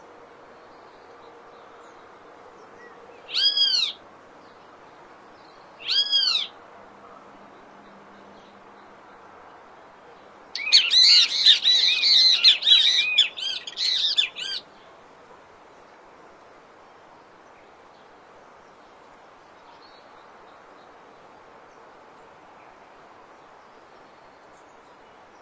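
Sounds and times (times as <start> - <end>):
great kiskadee calling with raspy notes and grating chatter in the wild in Brazil: 2.8 - 4.0, 5.8 - 6.5, 10.6 - 14.7.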